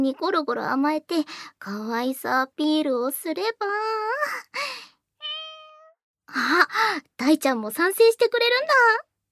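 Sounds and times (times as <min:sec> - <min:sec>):
speech: 0:00.0 - 0:04.8, 0:06.3 - 0:09.1
person imitating cat meows: 0:05.2 - 0:06.0.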